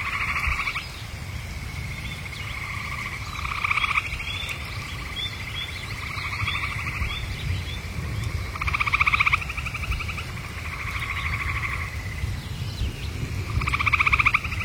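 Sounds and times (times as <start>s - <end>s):
frogs calling at a campsite: 0.0s - 14.6s
low rumble of wind at a campsite: 0.0s - 14.6s.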